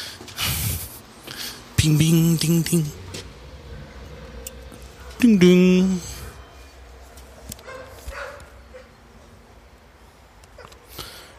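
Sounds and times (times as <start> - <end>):
quiet hissy background: 0.0 - 11.3
speech: 1.8 - 3.0, 5.2 - 6.1
dog barking: 3.8 - 5.2, 7.6 - 9.0.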